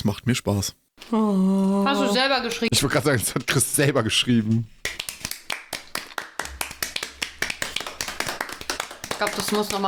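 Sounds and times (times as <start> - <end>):
speech: 0.1 - 4.8, 9.2 - 9.8
three people clapping after a poem: 4.5 - 9.8.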